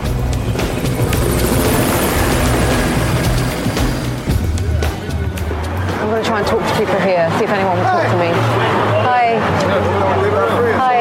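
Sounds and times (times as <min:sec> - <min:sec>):
police helicopter rotor thrumming overhead: 0:00.0 - 0:05.0
faint street noise: 0:00.0 - 0:11.0
speech: 0:06.4 - 0:11.0.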